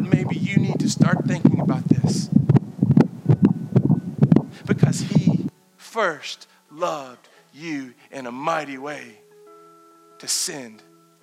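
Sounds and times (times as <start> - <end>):
deep heartbeat thumping in lub-dub pairs: 0.0 - 5.5
speech: 6.0 - 9.2, 10.2 - 10.9.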